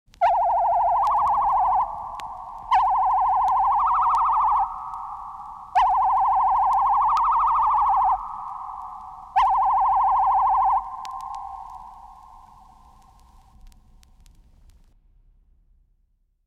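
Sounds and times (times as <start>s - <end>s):
science-fiction micron beam sound: 0.2s - 12.9s.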